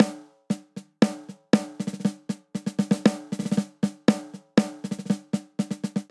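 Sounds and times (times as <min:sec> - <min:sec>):
straight rock snare drum beat: 0:00.0 - 0:06.0.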